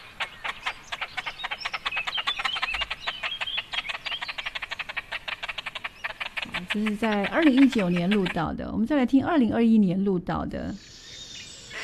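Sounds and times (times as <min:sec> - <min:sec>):
large bird raspy call: 0:00.0 - 0:08.6, 0:11.0 - 0:11.8
speech: 0:06.7 - 0:10.9.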